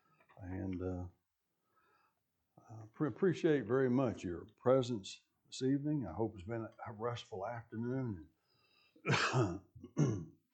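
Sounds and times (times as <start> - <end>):
speech: 0.4 - 1.2, 2.8 - 8.4, 9.0 - 10.3
person coughing in a church gathering: 9.1 - 10.3.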